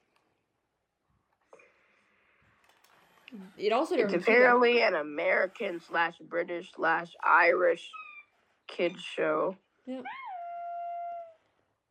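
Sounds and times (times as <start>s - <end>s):
speech: 3.3s - 8.0s, 8.7s - 10.2s
animal howling: 10.0s - 11.6s.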